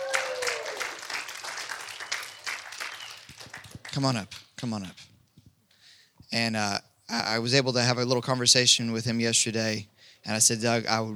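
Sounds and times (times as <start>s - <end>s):
audience applause at a religious gathering: 0.0s - 4.1s
speech: 3.9s - 5.1s, 6.3s - 11.1s.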